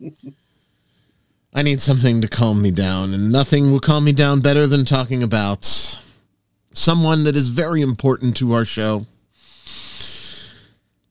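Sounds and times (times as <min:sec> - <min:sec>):
speech: 0:00.0 - 0:00.4, 0:01.6 - 0:06.0, 0:06.8 - 0:09.1
slow deep calming breath in and out: 0:09.4 - 0:10.8.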